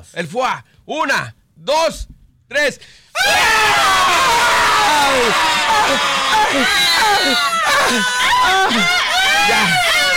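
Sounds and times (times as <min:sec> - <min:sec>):
speech: 0:00.0 - 0:10.1
group of people screaming together: 0:03.2 - 0:10.1.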